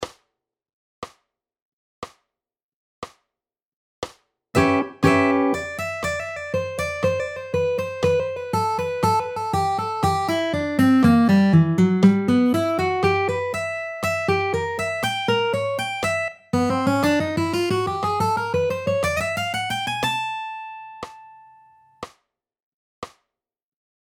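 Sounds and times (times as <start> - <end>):
manouche guitar solo: 4.6 - 21.6.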